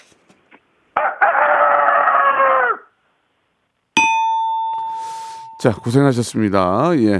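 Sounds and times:
person imitating rooster crow: 1.0s - 3.0s
bright bell ding: 4.0s - 6.4s
speech: 5.6s - 7.1s.

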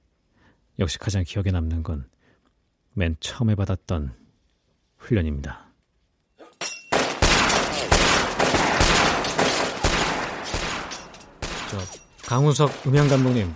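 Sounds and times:
speech: 0.8s - 2.2s, 3.0s - 4.2s, 5.0s - 5.6s, 11.7s - 13.5s
rapid gunfire sound effect: 7.0s - 13.5s.

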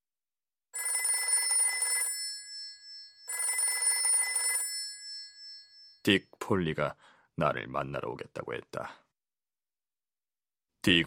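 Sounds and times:
telephone bell ringing with a metallic trill: 0.7s - 6.1s
speech: 6.0s - 9.0s, 10.8s - 11.0s.

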